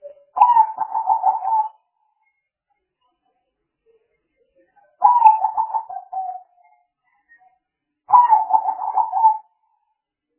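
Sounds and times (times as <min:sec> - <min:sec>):
spotted dove cooing: 0:00.4 - 0:01.8, 0:05.0 - 0:06.4, 0:08.1 - 0:09.4.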